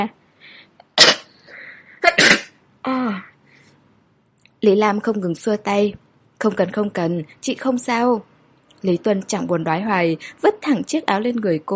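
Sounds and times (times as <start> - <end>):
woman sneezing after a gust of cold wind: 2.0 - 2.6
speech: 4.6 - 11.7.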